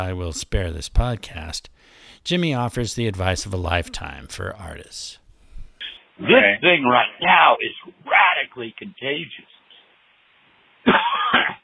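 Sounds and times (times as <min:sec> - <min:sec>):
speech: 0:00.0 - 0:05.2, 0:06.2 - 0:09.5
person coughing from smoking marijuana: 0:10.9 - 0:11.6.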